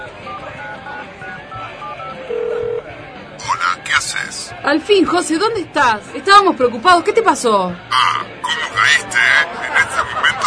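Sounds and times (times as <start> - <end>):
busy, noisy background: 0.0 - 10.4
longer, louder steady mobile phone tone: 0.2 - 3.0
mobile phone keypad beeps: 0.3 - 2.8
speech: 4.3 - 9.5
laughter: 8.0 - 10.4.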